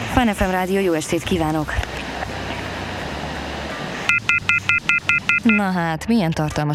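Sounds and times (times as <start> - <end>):
faint hum: 0.0 - 6.7
speech: 0.2 - 2.0, 5.4 - 6.7
telephone line disconnect tone after a radio phone-in caller hangs up: 4.1 - 5.7.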